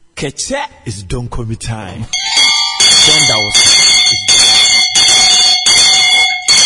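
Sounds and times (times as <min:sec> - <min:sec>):
speech: 0:00.3 - 0:04.5
loud electric bell ringing: 0:02.1 - 0:06.6.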